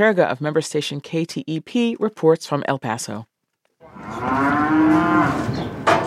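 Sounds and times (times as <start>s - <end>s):
speech: 0.0s - 3.3s
beef cattle mooing at a livestock crossing: 3.8s - 5.6s.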